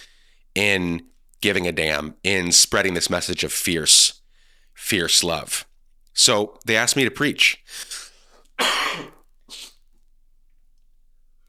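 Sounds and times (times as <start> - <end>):
speech: 0.6 - 4.2, 4.8 - 8.0
coughing: 7.7 - 9.9.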